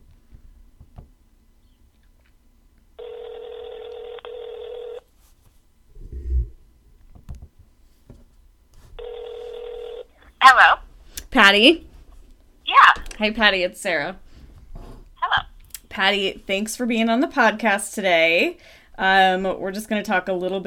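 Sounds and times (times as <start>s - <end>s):
phone line ringing with long buzzing rings: 3.0s - 5.0s, 9.0s - 10.1s
speech: 10.5s - 11.9s, 13.2s - 14.2s, 16.0s - 20.6s.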